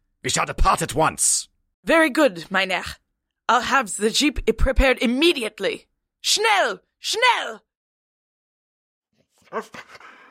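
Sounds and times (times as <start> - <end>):
speech: 0.2 - 7.7, 9.5 - 10.1
puppy panting: 9.6 - 10.2.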